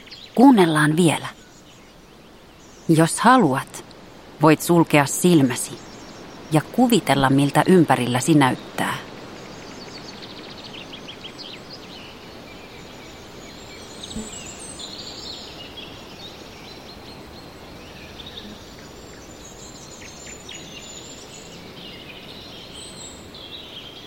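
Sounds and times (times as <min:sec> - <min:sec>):
steady soft rushing background of northern forest: 0:00.0 - 0:23.6
birds chirping faintly in northern forest: 0:00.0 - 0:24.0
speech: 0:00.4 - 0:01.4, 0:02.9 - 0:03.8, 0:04.4 - 0:05.9, 0:06.5 - 0:09.0.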